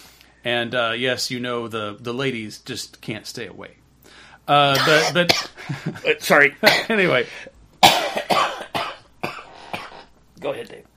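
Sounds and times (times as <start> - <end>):
speech: 0.4 - 7.6, 10.4 - 10.9
person coughing: 4.7 - 5.6, 6.6 - 7.0, 7.8 - 10.1.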